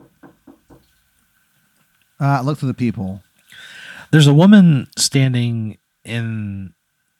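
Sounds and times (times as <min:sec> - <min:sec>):
knocking on a door: 0:00.0 - 0:00.8
speech: 0:02.2 - 0:03.3, 0:04.1 - 0:06.8.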